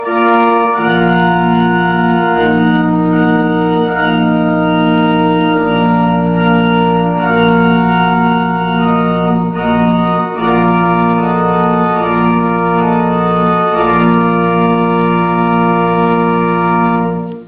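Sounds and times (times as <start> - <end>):
pipe organ: 0.0 - 17.4.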